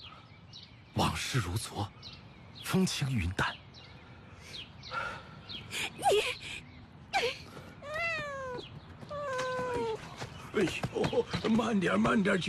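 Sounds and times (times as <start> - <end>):
speech: 1.0 - 2.2, 2.7 - 3.6, 10.6 - 12.4
cat meowing, begging for treats: 7.8 - 10.0.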